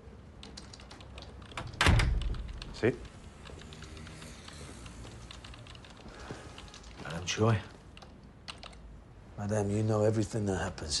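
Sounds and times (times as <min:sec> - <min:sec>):
keyboard typing in an office: 0:00.3 - 0:08.8
speech: 0:02.8 - 0:03.1, 0:07.3 - 0:07.7, 0:09.4 - 0:10.9.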